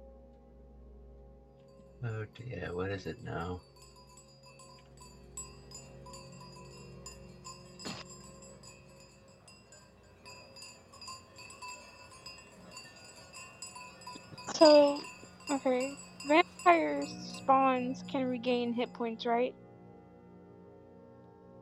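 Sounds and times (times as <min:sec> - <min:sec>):
many distant bells ringing: 0:01.7 - 0:19.5
speech: 0:02.0 - 0:03.8, 0:17.8 - 0:19.6
sharp metallic clank: 0:03.8 - 0:08.5.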